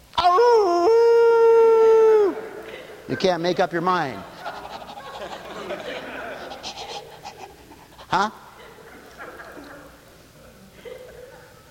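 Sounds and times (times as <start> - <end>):
person imitating a dog's howl: 0.2 - 2.4
laughter: 2.3 - 11.7
speech: 3.1 - 4.3, 8.1 - 8.4.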